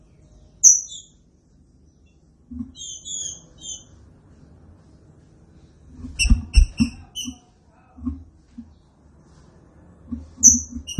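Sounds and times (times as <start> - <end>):
quiet low background noise: 0.0 - 10.9
Green-winged saltator classic song type: 0.2 - 1.2, 2.8 - 3.9, 10.4 - 10.9.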